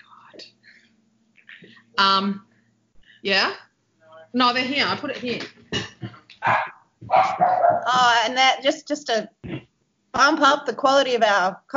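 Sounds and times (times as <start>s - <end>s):
speech: 2.0s - 2.5s, 3.2s - 3.7s, 4.3s - 5.6s, 6.4s - 9.4s, 10.2s - 11.7s
dog barking at the door: 6.4s - 7.9s.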